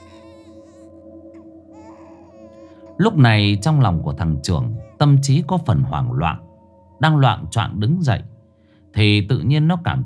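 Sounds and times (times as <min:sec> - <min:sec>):
child crying late at night: 0:00.0 - 0:00.9, 0:01.7 - 0:05.5
speech: 0:03.0 - 0:06.4, 0:07.0 - 0:08.3, 0:09.0 - 0:10.0.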